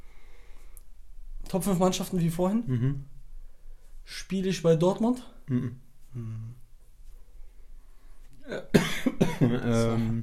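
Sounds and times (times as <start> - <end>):
speech: 1.5 - 3.1, 4.1 - 6.6, 9.4 - 10.2
person coughing harshly after choking: 8.4 - 10.2.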